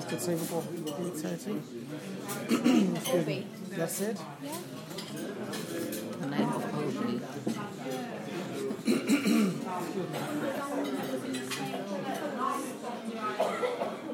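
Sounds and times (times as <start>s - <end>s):
steady murmur of many voices: 0.0s - 14.1s
speech: 0.1s - 11.4s
several people coughing and spluttering: 2.4s - 3.0s, 8.8s - 9.8s, 13.2s - 14.1s.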